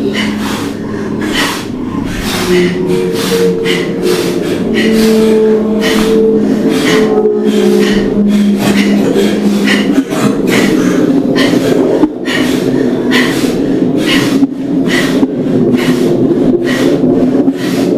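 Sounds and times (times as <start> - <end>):
faint low tonal hum: 0.0 - 12.3
deep forceful breathing during a breathing exercise: 0.0 - 17.9.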